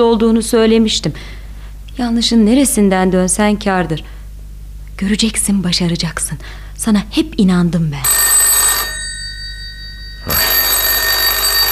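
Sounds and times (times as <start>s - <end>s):
speech: 0.0s - 1.4s, 2.0s - 4.2s, 5.0s - 8.2s
telephone bell ringing: 8.0s - 11.7s.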